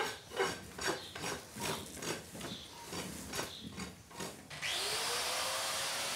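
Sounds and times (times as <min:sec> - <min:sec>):
rhythmic scraping strokes on hard hoof material: 0:00.0 - 0:04.6
angle grinder trimming animal claws: 0:04.5 - 0:06.1.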